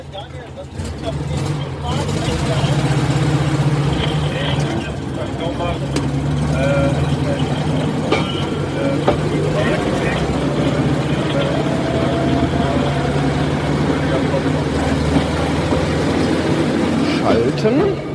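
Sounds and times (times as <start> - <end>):
small motorized rail draisine engine rumbling rolling off a turntable: 0.0 - 18.1
clanks: 7.9 - 11.4.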